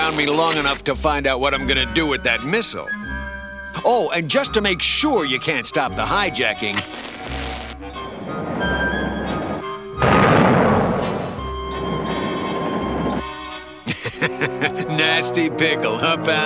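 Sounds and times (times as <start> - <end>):
speech: 0.1 - 7.4, 15.0 - 16.4
train roaring along the tracks: 7.9 - 13.8
laughter: 13.8 - 15.4.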